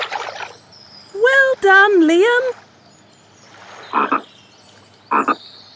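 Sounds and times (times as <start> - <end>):
faint steady hiss: 1.1 - 2.5
speech: 1.7 - 2.6
frog croaking: 5.1 - 5.4.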